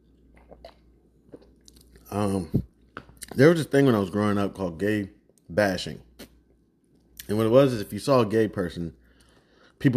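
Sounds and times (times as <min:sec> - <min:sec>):
sipping a soda: 0:00.2 - 0:03.3
swallowing: 0:00.3 - 0:03.4
speech: 0:02.1 - 0:02.7, 0:03.4 - 0:06.1, 0:07.3 - 0:09.0, 0:09.8 - 0:09.9.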